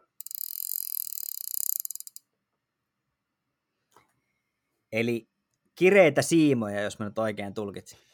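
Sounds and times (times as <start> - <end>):
fly fishing reel drag screaming and clicking: 0.2 - 2.3
speech: 4.9 - 8.1.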